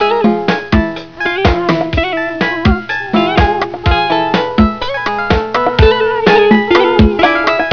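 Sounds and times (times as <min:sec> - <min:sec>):
loud dance loop: 0:00.7 - 0:07.7.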